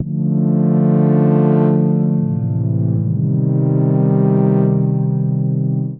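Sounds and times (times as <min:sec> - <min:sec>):
deep synth pad chord in D minor: 0:00.0 - 0:05.9.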